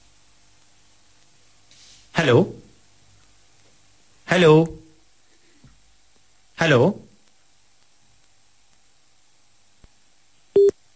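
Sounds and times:
faint hiss: 0.0 - 10.9
speech: 2.2 - 2.6, 4.4 - 4.8, 6.6 - 7.0
phone busy tone after a dropped phone call: 10.6 - 10.8.

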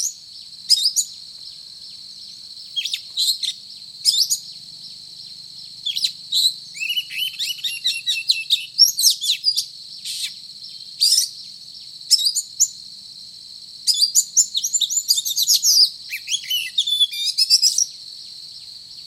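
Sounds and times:
Oriental magpie-robin singing vigorously with chirps, trills and buzzy notes: 2.6 - 4.5, 5.3 - 11.4, 13.9 - 18.0.

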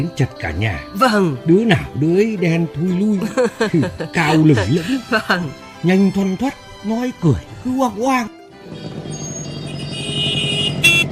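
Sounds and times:
speech: 0.0 - 8.9
laughter: 3.1 - 5.5
motorcycle engine riding into an alley: 8.5 - 11.0.

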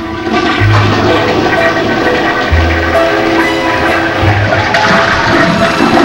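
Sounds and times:
toilet flush with lever pulled: 0.0 - 6.0
water gushing in toilet flush: 0.0 - 6.0
low pulsing thumps: 0.2 - 6.0.

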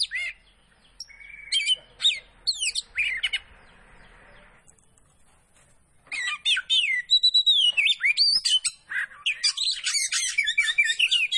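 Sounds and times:
Oriental Magpie-robin Kacer poci variety singing vigorously: 0.0 - 5.4, 6.0 - 11.3.

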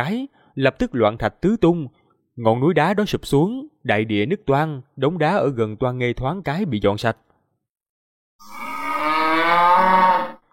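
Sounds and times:
speech: 0.0 - 7.3, 8.4 - 8.7
bull water buffalo bellowing: 8.4 - 10.5.

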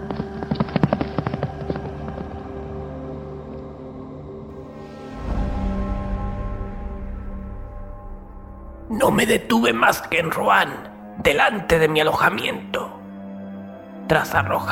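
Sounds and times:
horse hooves clattering while galloping away: 0.0 - 3.7
low rumble: 1.4 - 10.2
speech: 9.0 - 13.0, 14.1 - 14.7.

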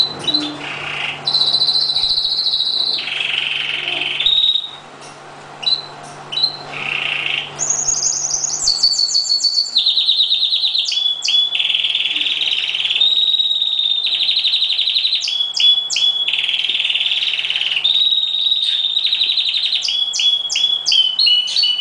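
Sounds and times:
steady low hum: 0.0 - 19.6
Oriental magpie-robin singing fast chattering trills and whistled notes: 0.0 - 21.7.

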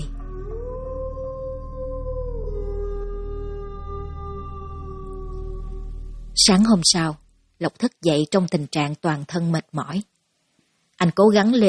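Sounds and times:
dog howling in a neighbour's yard: 0.2 - 5.8
speech: 6.4 - 10.1, 11.0 - 11.6.

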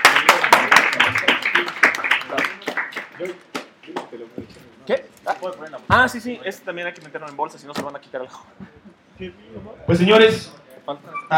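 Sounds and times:
applause from an audience at a comic-themed talk and giveaway: 0.0 - 4.1
speech: 3.2 - 3.5, 4.9 - 11.3.

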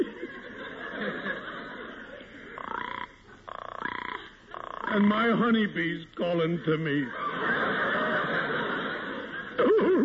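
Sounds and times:
laughter: 0.0 - 2.7, 6.8 - 10.0
frog croaking to call its mate: 2.6 - 5.3
speech: 5.0 - 7.6.

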